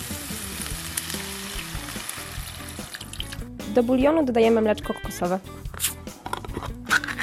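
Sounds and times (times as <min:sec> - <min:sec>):
broth poured into a hot pan of lightly fried vegetables and chicken: 0:00.0 - 0:03.4
sizzle and crackle of fried vegetables and chicken in a hot pan: 0:00.0 - 0:03.5
speech: 0:03.7 - 0:06.0.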